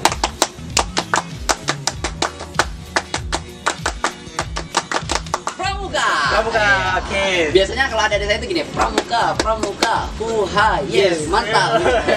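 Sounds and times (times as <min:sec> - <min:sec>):
rhythmic scout-style hand-clapping pattern: 0:00.0 - 0:05.7, 0:08.7 - 0:10.2
speech: 0:06.4 - 0:12.1
laughter: 0:11.4 - 0:12.1.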